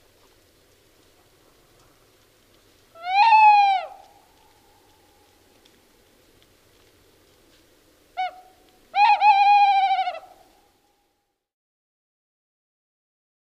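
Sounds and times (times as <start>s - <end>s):
tawny owl hooting: 3.0s - 4.2s, 8.2s - 10.5s.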